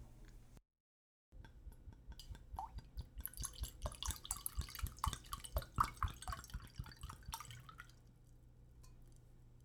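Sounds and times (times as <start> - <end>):
Malbec wine pouring into a glass: 2.0 - 8.2.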